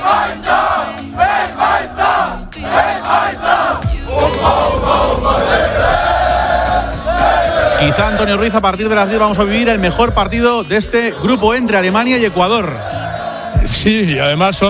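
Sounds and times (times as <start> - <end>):
roar of football fans in the streets of New Jersey: 0.0 - 9.7
football fans chanting in city streets: 0.0 - 13.8
speech: 7.8 - 14.6.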